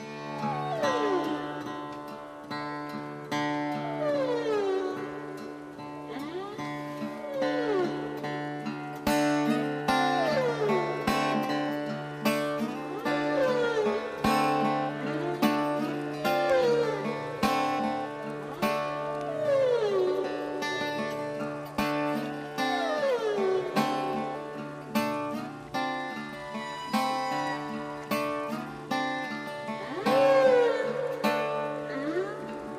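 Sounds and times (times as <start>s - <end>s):
whale and cetacean songs: 0.0s - 1.9s, 3.4s - 8.6s, 12.6s - 24.8s, 29.7s - 32.7s
steady musical backdrop of sustained tones: 0.0s - 32.7s.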